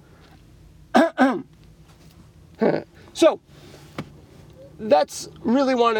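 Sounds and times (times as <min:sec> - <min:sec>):
person clearing throat beside a road: 0:00.9 - 0:01.5, 0:02.6 - 0:02.9
speech: 0:01.2 - 0:01.5, 0:02.6 - 0:03.6, 0:04.8 - 0:05.9.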